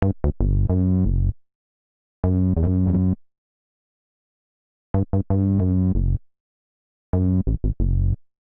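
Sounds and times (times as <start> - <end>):
bassline in F sharp minor: 0.0 - 1.4, 2.2 - 3.2, 5.0 - 6.3, 7.1 - 8.2.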